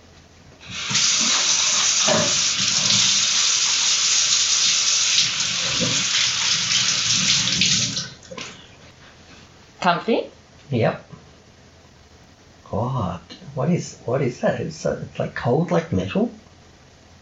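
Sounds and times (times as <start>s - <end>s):
water running from a tap while washing hands: 0.6s - 8.6s
speech: 9.8s - 11.2s, 13.6s - 16.4s.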